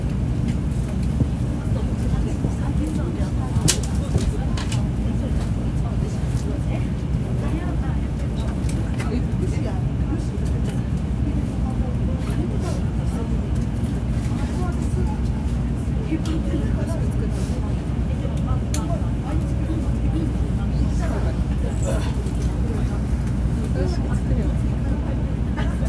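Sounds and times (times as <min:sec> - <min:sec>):
Shinkansen Nozomi bullet train bound for Hakata pulling away from the station: 0:00.0 - 0:25.8.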